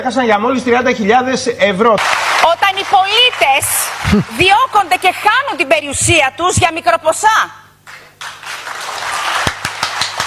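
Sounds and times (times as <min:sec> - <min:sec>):
speech: 0:00.0 - 0:07.6
hand clapping: 0:02.0 - 0:04.8, 0:07.8 - 0:10.2.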